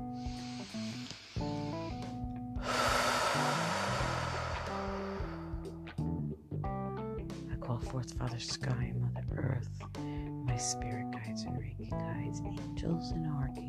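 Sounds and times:
slow deep breathing during a guided relaxation session: 0.0s - 6.0s
steady gentle music: 0.0s - 13.6s
speech: 7.8s - 13.6s.

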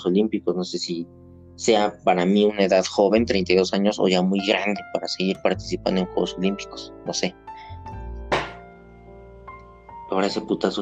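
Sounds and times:
speech: 0.0s - 7.9s, 10.1s - 10.8s
chair banging: 8.3s - 8.6s.

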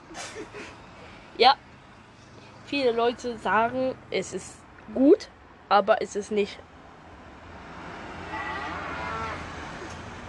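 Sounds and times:
steady noisy outdoor background: 0.0s - 10.2s
speech: 1.4s - 1.7s, 2.7s - 6.7s
cow mooing: 8.2s - 9.5s.

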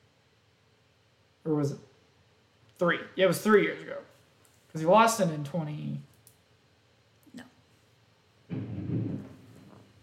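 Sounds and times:
speech: 1.4s - 1.9s, 2.8s - 4.1s, 4.7s - 6.1s
thunder rumbling: 8.5s - 9.8s.

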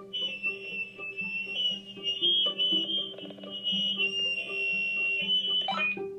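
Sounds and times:
pet parrot mimicking an electronic alarm beeping: 1.5s - 6.0s.

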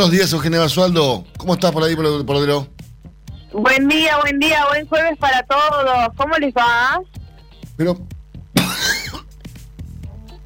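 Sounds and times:
speech: 0.0s - 2.7s, 3.5s - 7.2s, 7.8s - 8.1s
harsh chesty cough from a person with a congested chest: 8.6s - 9.4s.

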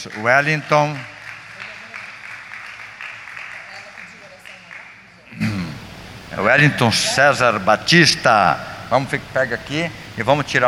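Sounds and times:
speech: 0.0s - 1.1s, 6.4s - 10.6s
audience applauding: 0.0s - 5.0s.

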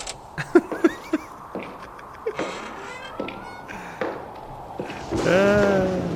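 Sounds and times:
faint hiss: 0.0s - 6.1s
laughter: 0.4s - 4.0s
footsteps of someone walking: 0.6s - 5.6s.

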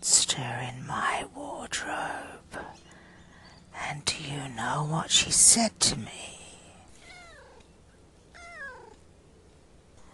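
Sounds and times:
faint hiss: 0.0s - 10.1s
speech: 3.9s - 6.3s
cat meowing: 7.0s - 7.6s, 8.3s - 9.0s.

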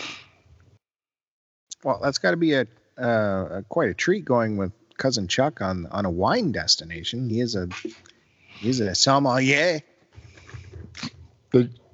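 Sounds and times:
sneeze: 0.0s - 0.5s, 7.7s - 8.0s
speech: 1.8s - 9.9s, 11.0s - 11.8s.

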